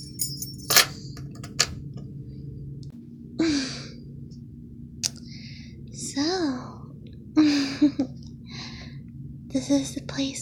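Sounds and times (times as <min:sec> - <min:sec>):
keys clinking and jingling as they are set down: 0:00.0 - 0:01.7
steady low hum: 0:00.0 - 0:10.4
speech: 0:09.7 - 0:10.4.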